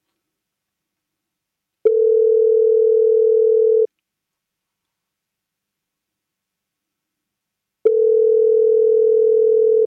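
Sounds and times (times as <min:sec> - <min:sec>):
long steady telephone tones during a call attempt: 0:01.8 - 0:03.9, 0:07.8 - 0:09.8.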